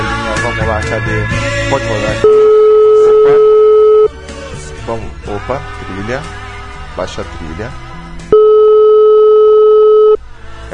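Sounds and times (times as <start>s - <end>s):
speech: 0.6s - 2.6s, 4.9s - 6.4s, 7.0s - 7.8s
telephone line tone while placing a call: 2.2s - 4.1s, 8.3s - 10.2s.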